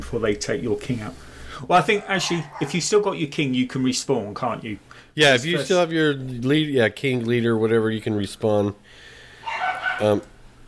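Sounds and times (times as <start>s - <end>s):
speech: 0.1s - 9.1s, 10.0s - 10.3s
dogs barking and fighting outside a door: 1.9s - 3.0s, 9.4s - 10.2s.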